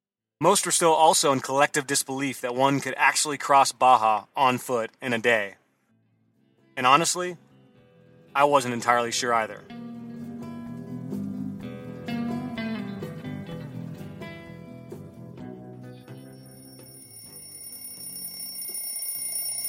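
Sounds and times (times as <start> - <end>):
speech: 0.4 - 5.6, 6.8 - 7.5, 8.4 - 9.9
alarm clock ringing with an electronic chime: 16.1 - 19.6.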